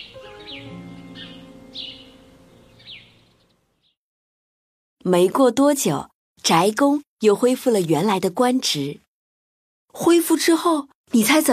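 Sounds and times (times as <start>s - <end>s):
sparrows chirping at a house's doorway: 0.0s - 4.0s
speech: 5.1s - 9.0s, 10.0s - 11.5s.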